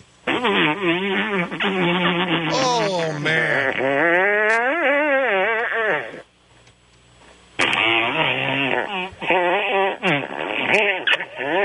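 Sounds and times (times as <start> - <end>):
speech: 0.4 - 2.0
long buzzy fart sound effect: 2.3 - 6.2, 7.6 - 11.6.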